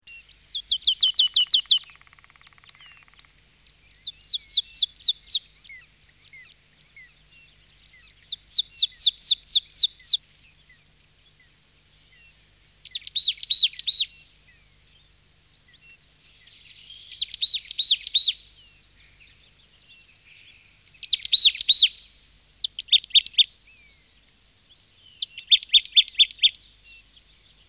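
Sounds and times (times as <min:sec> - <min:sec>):
marsh tit calling: 0:00.5 - 0:07.1, 0:08.0 - 0:10.9, 0:12.8 - 0:14.2, 0:16.4 - 0:18.4, 0:19.0 - 0:23.5, 0:25.1 - 0:26.6.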